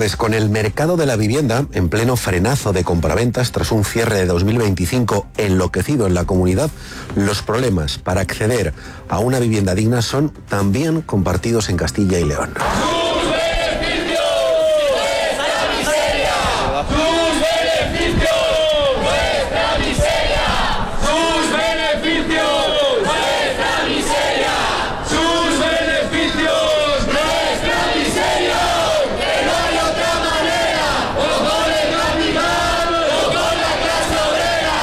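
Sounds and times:
speech: 0.0s - 12.9s
street protest crowd chanting against housing prices in Valladolid: 12.6s - 34.8s.

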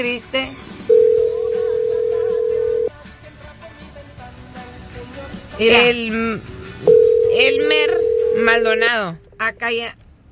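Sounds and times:
speech: 0.0s - 1.0s, 5.6s - 10.0s
telephone dial tone while calling a number: 0.9s - 2.9s, 6.9s - 8.5s.

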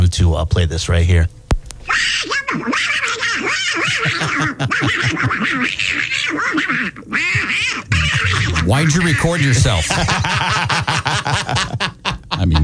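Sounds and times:
speech: 0.1s - 12.6s
angry cartoon duck voice quacking, human voice imitating a furious duck: 1.9s - 4.1s, 5.7s - 9.6s
laughter: 1.9s - 12.6s.

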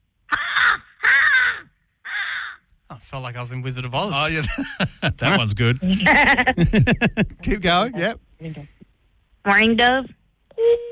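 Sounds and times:
American crow cawing: 0.3s - 2.7s
speech: 3.0s - 8.8s, 9.4s - 10.2s
laughter: 4.2s - 7.8s.

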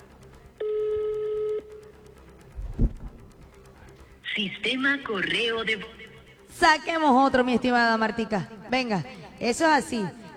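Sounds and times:
buzzing telephone tone of a phone number being redialed: 0.0s - 6.4s
speech: 4.4s - 6.0s, 6.6s - 10.3s.

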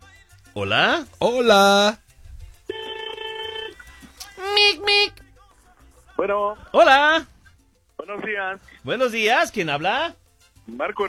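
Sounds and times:
speech: 0.6s - 2.0s, 6.2s - 7.3s, 8.0s - 11.0s
telephone ringing with an incoming call: 2.7s - 3.8s.

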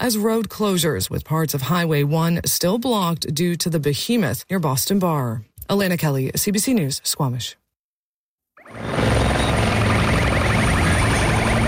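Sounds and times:
speech: 0.0s - 7.6s
helicopter flying over a wildfire near Madrid, Spain: 8.6s - 11.6s.

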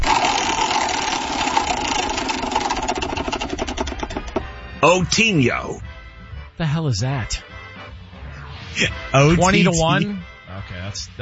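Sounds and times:
prize wheel spinning and clicking in a sports-betting game segment: 0.0s - 5.5s
steady humming drone: 0.0s - 6.4s, 7.5s - 10.6s
speech: 4.8s - 5.9s, 6.6s - 7.4s, 8.8s - 10.3s, 10.9s - 11.2s.

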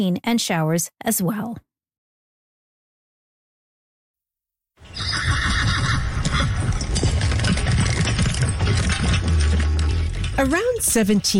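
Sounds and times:
speech: 0.0s - 1.7s, 10.4s - 11.3s
horse whinnying: 4.8s - 10.3s
horse hooves clattering: 4.8s - 11.3s
low rumbling: 5.0s - 11.3s.

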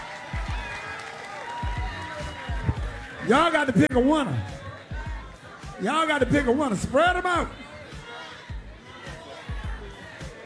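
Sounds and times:
busy crowd roaring and clapping: 0.0s - 10.4s
speech: 3.3s - 4.6s, 5.8s - 7.6s.

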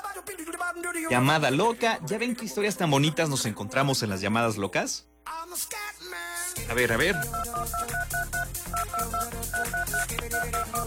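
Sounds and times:
speech: 0.6s - 8.0s
keypad tones as a number is dialed on a new phone: 6.9s - 10.8s.

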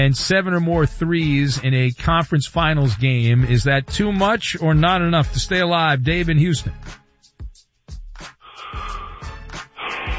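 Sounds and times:
speech: 0.0s - 7.0s
dramatic deep breath with throaty rasp: 8.3s - 10.1s.

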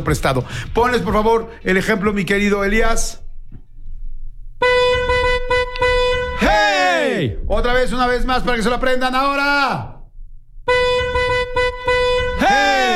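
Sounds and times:
speech: 0.0s - 3.2s, 7.2s - 9.9s
car horn honking in a pattern: 4.6s - 7.1s, 10.6s - 12.9s.

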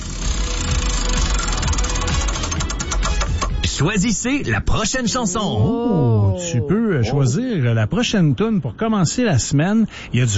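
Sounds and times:
prize wheel spinning on a radio show: 0.0s - 3.4s
speech: 3.8s - 10.3s.

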